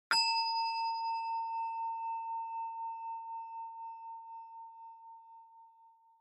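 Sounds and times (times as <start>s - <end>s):
long high ding: 0.1s - 4.3s.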